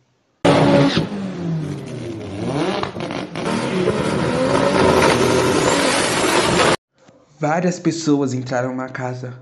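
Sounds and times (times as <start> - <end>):
several car engines revving as vehicles pull in: 0.5 - 6.8
speech: 7.4 - 9.4.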